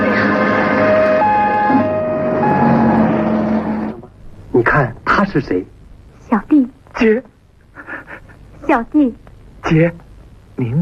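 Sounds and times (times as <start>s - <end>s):
busy hum: 0.0s - 10.8s
ambulance siren wailing in a two-tone alternating pattern: 0.6s - 4.0s
speech: 5.3s - 7.3s, 8.7s - 10.0s, 10.6s - 10.8s.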